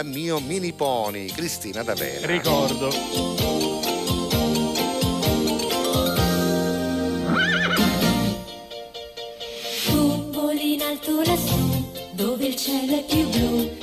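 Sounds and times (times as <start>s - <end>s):
speech: 0.0s - 3.9s, 12.5s - 13.8s
bright bouncy Italian cartoon theme song intro with a steady beat: 0.0s - 13.8s
loud wavering horse whinny: 7.2s - 8.4s.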